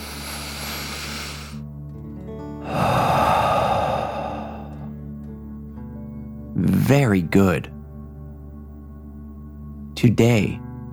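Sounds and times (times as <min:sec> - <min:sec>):
deep breath drawn in and blown out through the mouth: 0:00.0 - 0:01.6, 0:02.6 - 0:05.0
speech: 0:06.6 - 0:07.8, 0:10.0 - 0:10.6.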